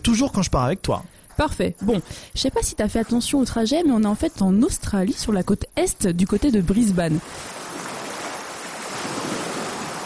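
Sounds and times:
speech: 0:00.1 - 0:07.6
sea waves on the Coral Sea coast near Brisbane, Australia: 0:06.8 - 0:10.0.

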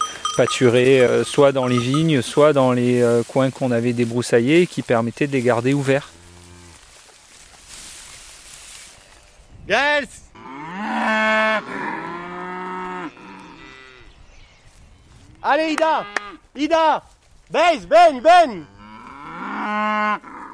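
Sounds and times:
speech: 0:00.4 - 0:06.2, 0:09.7 - 0:10.2, 0:15.5 - 0:18.7
Highland cattle mooing: 0:10.4 - 0:14.1, 0:18.6 - 0:20.5.

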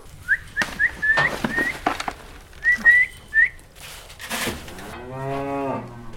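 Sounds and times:
scattered clicks and rustles: 0:00.5 - 0:05.0
Hereford beef cow mooing: 0:04.9 - 0:06.1.

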